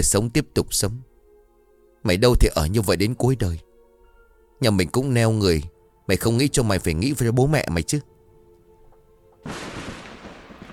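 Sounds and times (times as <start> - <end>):
speech: 0.0 - 1.1, 2.0 - 3.7, 4.6 - 8.1
thunder clap with lightning strike: 9.5 - 10.7.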